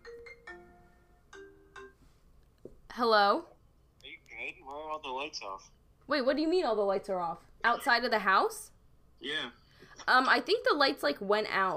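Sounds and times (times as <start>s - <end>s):
phone ringtone for an incoming call: 0.0s - 2.1s
speech: 3.0s - 3.5s, 4.5s - 11.7s.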